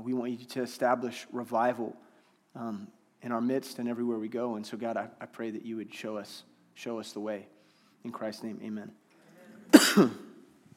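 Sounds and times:
speech: 0.0s - 9.0s, 9.7s - 10.2s
person coughing from a tickle in the throat: 9.6s - 10.4s.

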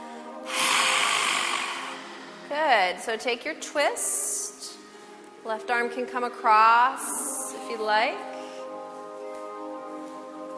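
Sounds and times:
forceful yoga lion's breath exhale with tongue stuck out: 0.0s - 2.5s
speech: 2.6s - 4.3s, 5.4s - 8.3s.

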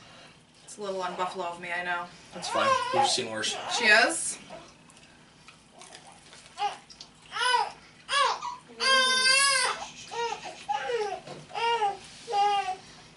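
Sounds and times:
speech: 0.8s - 4.6s
newborn baby girl crying: 2.4s - 4.1s, 6.6s - 12.8s.

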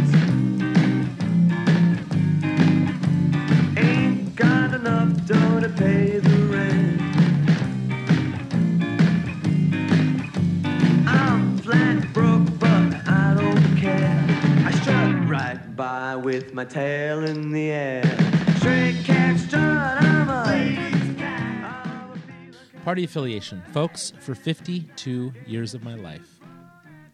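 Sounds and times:
song with sung vocal line over full band accompaniment: 0.0s - 15.6s, 17.9s - 22.9s
speech: 16.4s - 18.2s, 22.9s - 26.4s.

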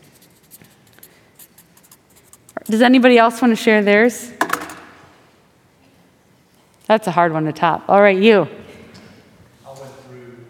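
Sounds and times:
writing on a wooden popsicle stick: 0.0s - 2.9s
speech: 2.6s - 4.4s, 6.9s - 8.6s.

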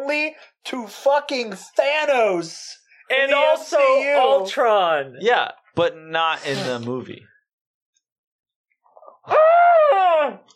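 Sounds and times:
speech: 0.1s - 7.3s, 9.3s - 10.5s
person stifling a scream: 9.2s - 10.5s.

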